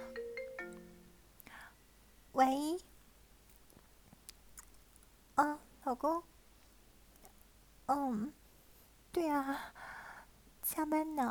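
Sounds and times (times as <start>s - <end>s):
mobile phone ringtone electronic melody: 0.0s - 1.1s
speech: 2.4s - 2.9s, 5.9s - 6.3s, 7.9s - 8.4s, 9.2s - 9.8s, 10.7s - 11.2s.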